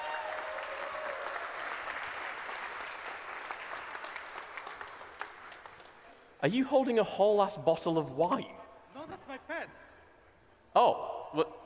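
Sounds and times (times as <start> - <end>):
live show crowd applause: 0.0 - 6.0
speech: 6.4 - 8.6.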